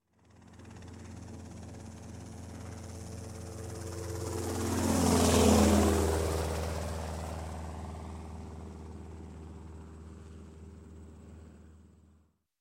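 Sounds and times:
Robinson helicopter passing by fast: 0.1 - 12.2.

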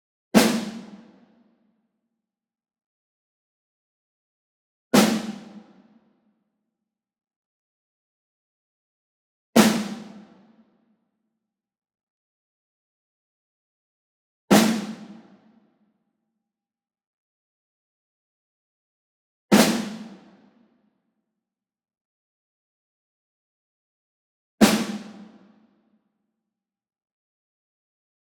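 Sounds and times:
medium ensemble snare group hit: 0.4 - 1.0, 5.0 - 5.7, 9.6 - 10.2, 14.5 - 15.2, 19.5 - 20.3, 24.6 - 25.4.

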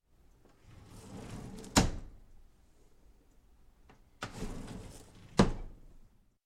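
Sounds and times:
kitchen drawer opening and closing: 0.6 - 2.2, 4.2 - 5.9.

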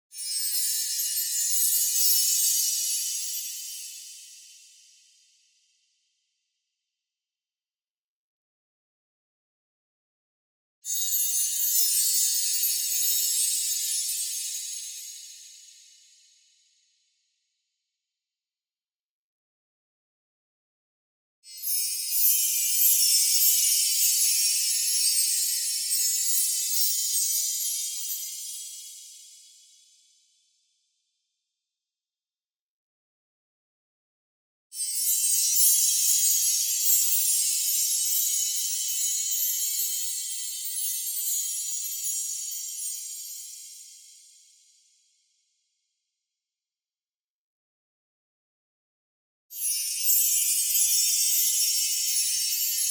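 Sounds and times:
shimmering chimes with steady light frequency shift: 0.1 - 5.0, 10.9 - 16.2, 21.5 - 29.9, 34.8 - 44.6, 49.5 - 52.8.

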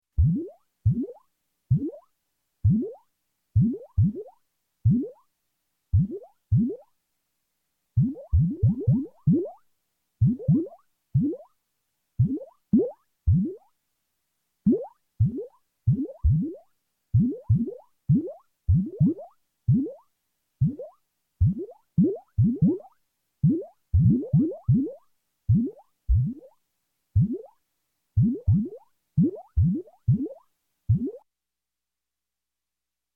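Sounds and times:
slow electronic space bubbles bubbling: 0.2 - 2.0, 2.7 - 3.0, 6.0 - 6.8, 8.0 - 9.6, 10.2 - 11.5, 12.2 - 13.6, 14.7 - 16.6, 17.2 - 20.0, 20.6 - 26.6, 27.2 - 27.5, 28.2 - 31.2.

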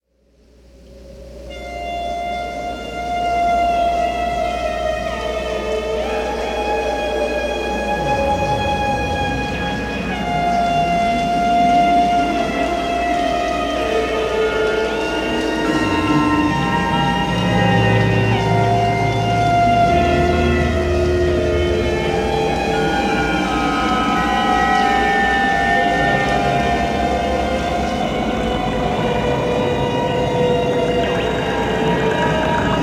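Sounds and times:
ghostly music: 0.3 - 32.8.

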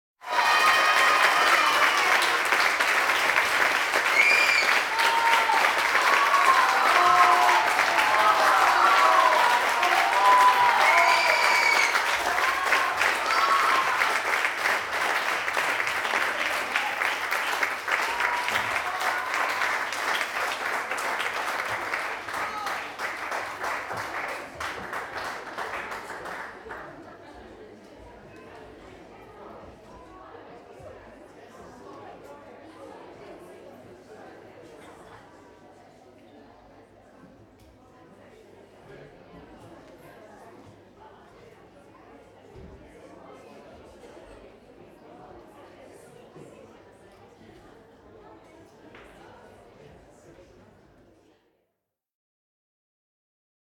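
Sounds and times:
applause at a concert: 0.2 - 27.4.

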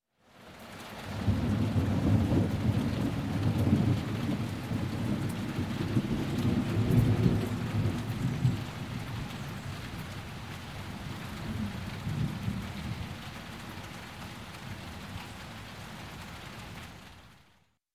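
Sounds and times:
rain: 0.1 - 17.8
short thunder rumble: 1.1 - 9.8.

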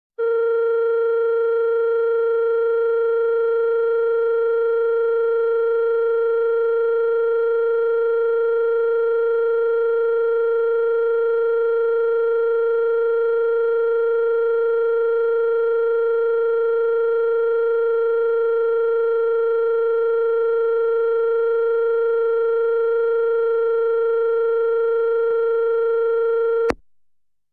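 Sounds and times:
European telephone dial signal: 0.2 - 26.8.

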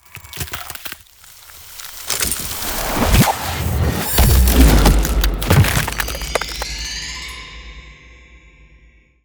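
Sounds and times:
ice spell arrow damage impact: 0.2 - 7.3.

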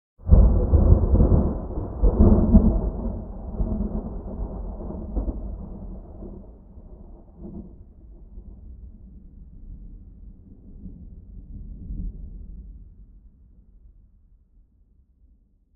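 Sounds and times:
thunder echoing: 0.2 - 7.6.

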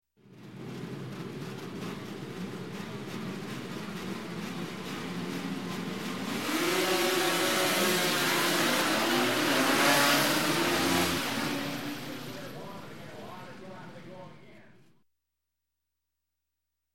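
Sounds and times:
600cc production race motorcycles starting: 0.3 - 13.8.

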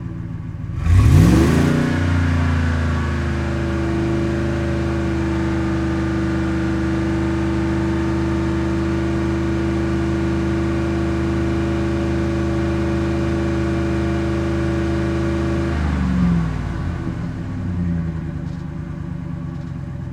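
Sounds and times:
expedition truck engine at fast idle: 0.0 - 20.1.

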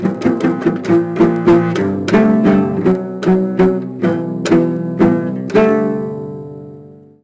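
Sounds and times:
cello strummed badly: 0.0 - 7.0.

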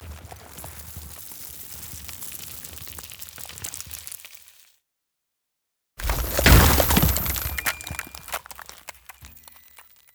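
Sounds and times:
ice spell freezing effect: 6.0 - 10.0.

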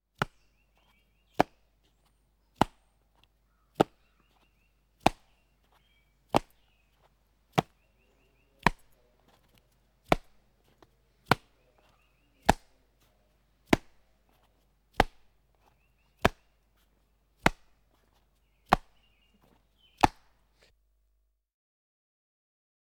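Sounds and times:
baseball hitting a glove: 0.2 - 0.4, 1.4 - 1.6, 2.6 - 2.9, 3.8 - 4.0, 5.0 - 6.6, 7.5 - 7.8, 8.6 - 9.4, 10.1 - 10.4, 11.2 - 11.6, 12.4 - 12.8, 13.7 - 14.0, 15.0 - 15.3, 17.4 - 17.8, 18.7 - 19.0, 20.0 - 20.4.

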